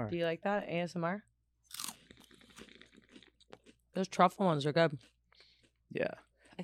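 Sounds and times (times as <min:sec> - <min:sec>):
speech: 0:00.0 - 0:01.8, 0:04.0 - 0:05.1, 0:05.9 - 0:06.6
person crunching cannabis-infused shrimp chips: 0:01.7 - 0:03.8.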